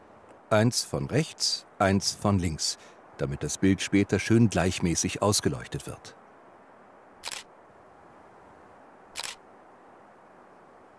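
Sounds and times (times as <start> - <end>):
quiet hiss: 0.0 - 10.9
speech: 0.5 - 6.2
remote-controlled camera shutter clicks: 7.2 - 7.5, 9.2 - 9.4.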